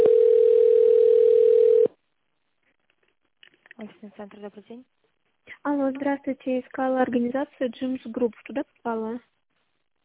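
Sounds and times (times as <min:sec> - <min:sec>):
telephone ringback tone while connecting to an operator: 0:00.0 - 0:01.9
speech: 0:03.8 - 0:09.4.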